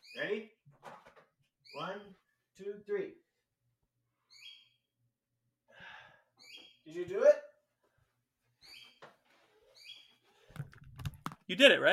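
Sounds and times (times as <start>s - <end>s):
bird chirping outside: 0.0s - 0.6s, 1.6s - 2.3s, 4.2s - 5.0s, 6.4s - 7.0s, 8.5s - 10.5s
speech: 11.6s - 11.9s.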